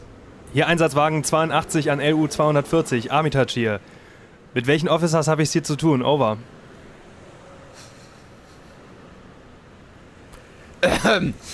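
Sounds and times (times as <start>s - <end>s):
speech: 0.5s - 6.6s, 11.1s - 11.5s
loud rough throat-clearing cough: 10.8s - 11.5s.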